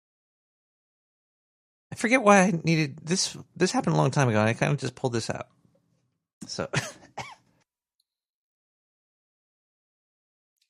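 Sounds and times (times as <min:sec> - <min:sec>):
speech: 0:01.9 - 0:05.6, 0:06.5 - 0:07.3
throat-clearing cough: 0:06.6 - 0:07.5.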